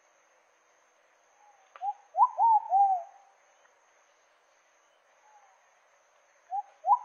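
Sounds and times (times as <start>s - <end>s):
pigeon song with click and slurred coos: 1.8s - 3.1s, 6.5s - 7.0s.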